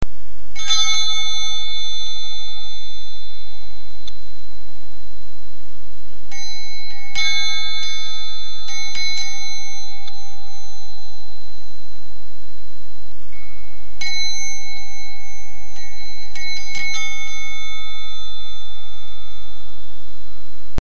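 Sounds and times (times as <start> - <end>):
trio of temple bells: 0.6 - 4.1, 6.3 - 11.4, 13.3 - 20.1.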